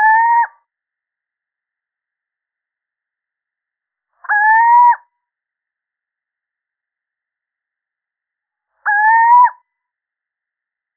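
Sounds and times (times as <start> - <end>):
male little owl hooting: 0.0 - 0.6, 4.2 - 5.1, 8.8 - 9.6.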